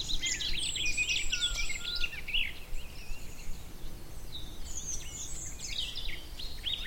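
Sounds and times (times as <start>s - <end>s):
garden warbler song: 0.0s - 6.8s.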